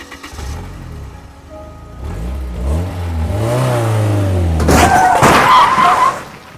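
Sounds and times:
car engine starting and revving: 0.0s - 5.1s.

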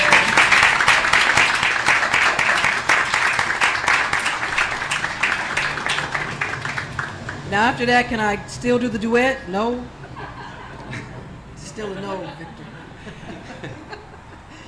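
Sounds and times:
crowd applauding: 0.0s - 7.6s
speech: 7.6s - 10.0s, 11.8s - 12.8s
laughter: 10.0s - 14.6s.

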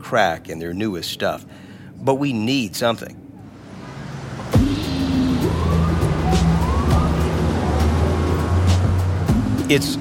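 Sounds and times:
speech: 0.1s - 3.2s, 9.7s - 9.9s
roar of city traffic at Columbus Circle in New York City: 3.2s - 9.9s
siren-like wavering tone: 4.5s - 9.7s.

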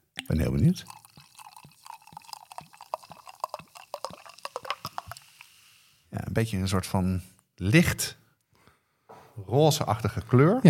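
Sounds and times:
carbonated drink bubbles popping: 0.2s - 5.2s
carbonated homemade drink pouring into glasses: 0.2s - 5.8s
speech: 0.3s - 1.0s, 6.4s - 8.2s, 9.4s - 10.6s.

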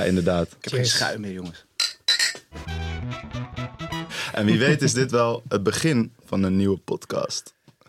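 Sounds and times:
speech: 0.0s - 2.0s, 4.4s - 7.6s
glasses clinking in a toast: 1.8s - 2.5s
tuneful music: 2.5s - 5.0s
laughter: 4.2s - 5.0s.

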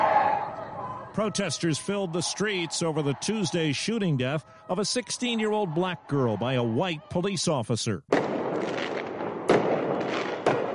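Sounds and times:
speech: 1.2s - 8.8s
fireworks set off by a crowd of protesters in a street: 8.1s - 10.7s.

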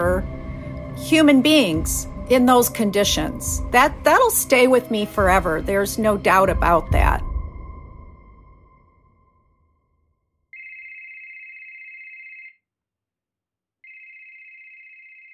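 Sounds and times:
speech: 1.0s - 7.3s
telephone ringing with an electronic trill: 10.6s - 12.6s, 13.8s - 15.3s.

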